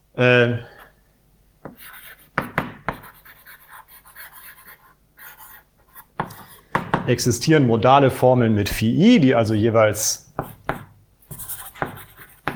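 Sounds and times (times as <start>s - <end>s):
speech: 0.2s - 0.7s, 7.1s - 10.2s
scratchy writing strokes during a logic lecture: 1.6s - 6.9s, 10.4s - 12.5s.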